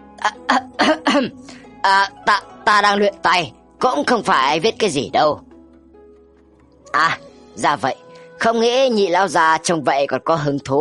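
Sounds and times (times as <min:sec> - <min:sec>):
old man coughing heavily: 0:00.2 - 0:01.4
speech: 0:00.2 - 0:05.4, 0:06.9 - 0:10.7.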